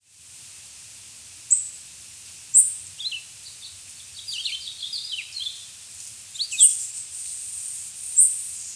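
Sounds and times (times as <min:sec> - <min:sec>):
Swainson's warbler singing: 0:01.5 - 0:01.8, 0:02.5 - 0:08.5.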